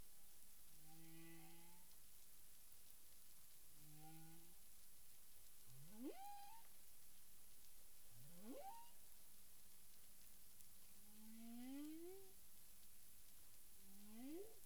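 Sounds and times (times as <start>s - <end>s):
steady background hiss: 0.0s - 14.6s
humpback whale low moans and rising upsweeps: 5.9s - 6.6s, 8.3s - 9.0s, 11.2s - 12.4s, 13.9s - 14.6s.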